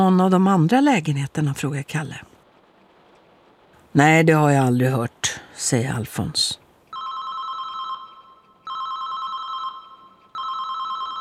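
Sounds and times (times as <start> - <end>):
speech: 0.0 - 2.3, 3.9 - 6.6
mobile phone ringing in stairwell: 6.9 - 11.1.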